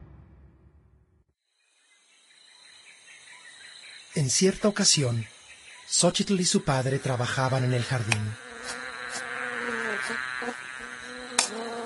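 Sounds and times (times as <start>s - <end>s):
speech: 4.2s - 8.8s
bees buzzing visiting garden flowers: 6.9s - 11.8s.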